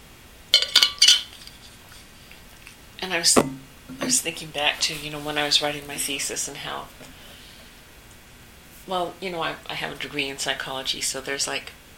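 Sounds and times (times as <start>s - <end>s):
glass clinking while someone gets a drink of water: 0.6s - 1.3s
speech: 3.0s - 7.2s, 8.9s - 11.8s.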